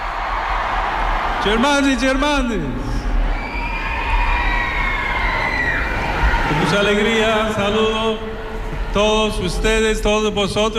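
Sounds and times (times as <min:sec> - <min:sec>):
large crowd roaring, cheering and shouting at La Seu in Barcelona: 0:00.0 - 0:10.7
speech: 0:01.4 - 0:02.9, 0:06.5 - 0:10.7.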